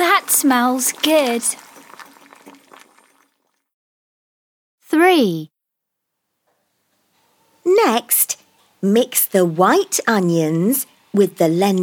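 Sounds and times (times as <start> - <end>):
water boiling in a saucepan: 0.0 - 3.6
speech: 0.4 - 1.7, 4.9 - 5.5, 7.7 - 11.8.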